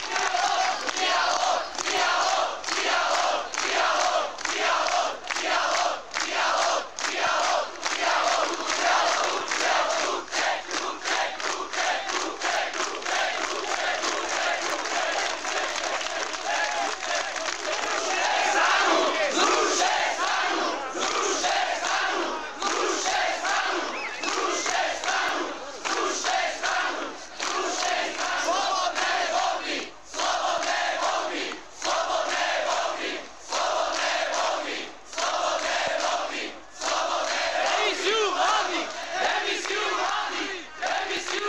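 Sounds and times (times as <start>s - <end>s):
large outdoor crowd on a city square shouting and cheering: 0.0s - 41.4s.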